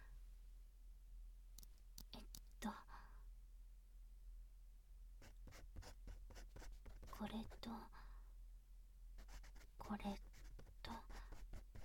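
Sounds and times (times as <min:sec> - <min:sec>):
faint steady hum: 0:00.0 - 0:11.8
speech: 0:02.6 - 0:02.9, 0:07.2 - 0:08.0, 0:09.9 - 0:10.3
pen scratching across memo paper: 0:05.2 - 0:07.6, 0:09.2 - 0:11.8.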